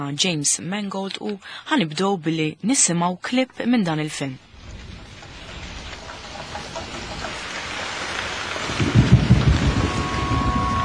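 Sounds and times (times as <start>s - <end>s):
speech: 0.0s - 4.5s
heavy rain: 4.4s - 10.8s
deep rumbling roll of thunder: 4.5s - 10.8s.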